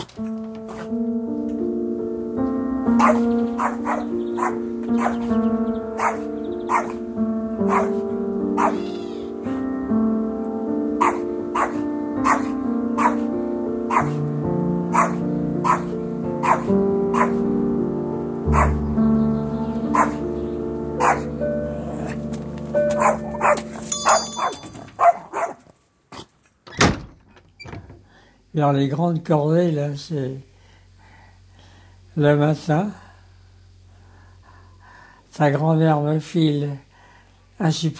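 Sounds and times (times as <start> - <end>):
sustained tonal background: 0.0 - 25.2
speech: 0.2 - 0.4, 2.9 - 7.0, 7.7 - 8.9, 28.6 - 30.5, 32.2 - 33.0, 35.4 - 36.9, 37.6 - 37.9
dog barking: 3.0 - 5.3, 6.0 - 7.0, 7.7 - 8.0, 8.6 - 9.0, 11.0 - 13.3, 13.9 - 14.2, 14.9 - 17.4, 18.5 - 18.8, 19.9 - 20.2, 21.0 - 21.3, 23.0 - 25.6.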